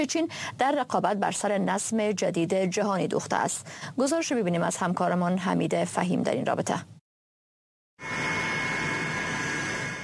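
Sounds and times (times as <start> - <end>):
speech: 0.0 - 7.0
jet airplane roar with high engine whine while landing: 8.0 - 10.0.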